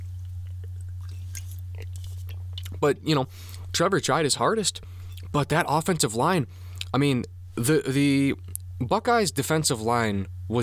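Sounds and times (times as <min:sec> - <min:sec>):
steady low hum: 0:00.0 - 0:10.6
person sipping a drink and swallowing: 0:00.2 - 0:02.8
speech: 0:02.8 - 0:10.6.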